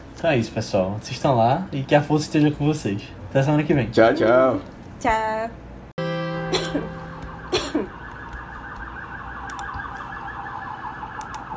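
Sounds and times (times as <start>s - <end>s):
speech: 0.2s - 5.6s, 6.5s - 7.0s
loud steady warbling alarm: 6.0s - 11.5s
woman coughing: 6.4s - 8.0s.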